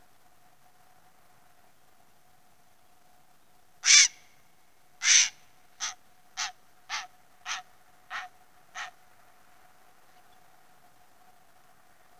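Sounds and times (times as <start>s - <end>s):
grey heron Ardea cinerea calling: 3.8s - 4.2s, 5.0s - 8.9s.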